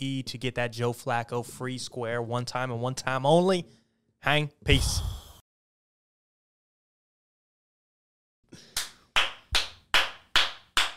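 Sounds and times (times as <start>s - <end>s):
speech: 0.0s - 5.1s
hands clapping: 8.6s - 10.9s.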